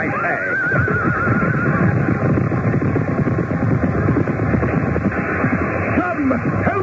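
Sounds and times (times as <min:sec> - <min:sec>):
horse neighing during a jousting charge: 0:00.0 - 0:02.2
crowd commotion: 0:00.0 - 0:06.8.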